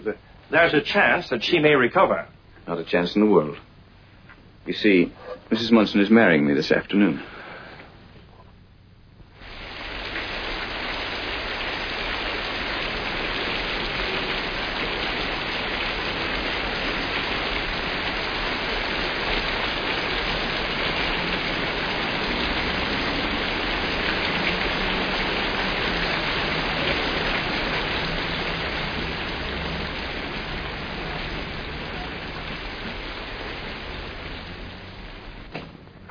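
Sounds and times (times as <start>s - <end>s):
speech: 0.0s - 3.7s, 4.7s - 7.4s
rain falling: 9.3s - 36.0s.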